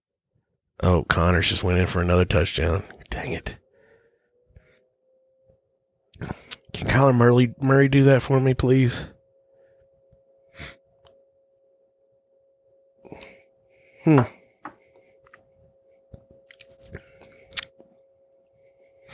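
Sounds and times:
speech: 0:00.8 - 0:03.6, 0:06.2 - 0:09.1, 0:10.6 - 0:10.8, 0:14.0 - 0:14.4
faint steady hum: 0:00.8 - 0:19.1
person sipping a menthol-flavored drink: 0:13.1 - 0:13.4, 0:16.5 - 0:17.8.

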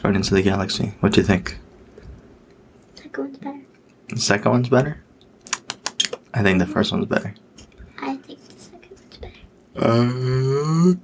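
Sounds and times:
speech: 0:00.1 - 0:01.6, 0:03.2 - 0:05.0, 0:06.3 - 0:07.4, 0:09.8 - 0:11.0
long drawn-out voiced yawn rising into a groan: 0:09.8 - 0:11.0.

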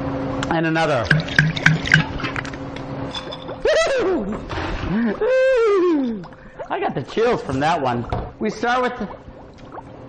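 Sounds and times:
speech: 0:00.5 - 0:01.2, 0:05.0 - 0:09.2
Kahlua pouring into a glass over ice for a black Russian: 0:01.1 - 0:02.6
ice clinking in a glass: 0:01.1 - 0:03.6
laughter: 0:03.6 - 0:06.3.

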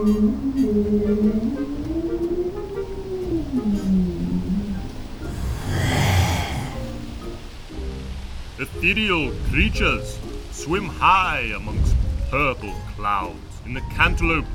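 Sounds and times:
speech: 0:00.0 - 0:01.6, 0:08.8 - 0:14.5
long low whale song: 0:00.0 - 0:07.1
breathy rushing exhale with a deep rumble: 0:05.2 - 0:07.1.

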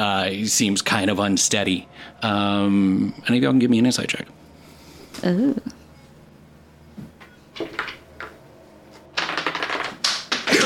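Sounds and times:
speech: 0:00.2 - 0:04.4, 0:05.2 - 0:05.8
dice tumbling and skittering across a tabletop: 0:09.2 - 0:10.5.

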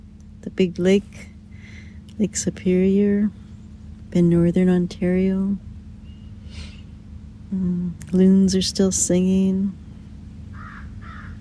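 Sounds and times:
low outdoor rumble on the shores of Lake Superior in Northern Ontario: 0:00.0 - 0:11.3
speech: 0:00.5 - 0:01.3, 0:02.2 - 0:03.4, 0:04.1 - 0:05.7, 0:07.5 - 0:09.8
crows cawing harshly: 0:10.5 - 0:11.3.

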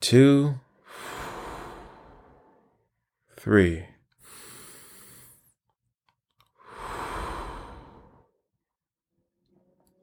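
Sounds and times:
speech: 0:00.1 - 0:00.6, 0:03.4 - 0:03.9
slow deep calming breath: 0:00.8 - 0:03.1, 0:04.2 - 0:05.6, 0:06.5 - 0:08.4.

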